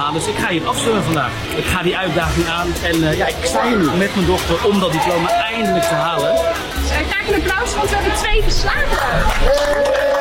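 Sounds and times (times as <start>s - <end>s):
speech: 0.1s - 10.1s
excited voices: 2.2s - 10.1s
loud crowd cheering and whooping: 4.6s - 6.7s, 8.7s - 10.1s
clapping: 9.0s - 10.1s.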